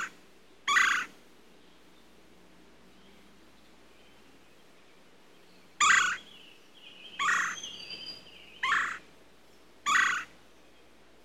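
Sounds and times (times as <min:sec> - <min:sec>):
red-bellied woodpecker giving churr calls: 0:00.0 - 0:01.1, 0:05.8 - 0:06.3, 0:07.1 - 0:09.1, 0:09.8 - 0:10.3.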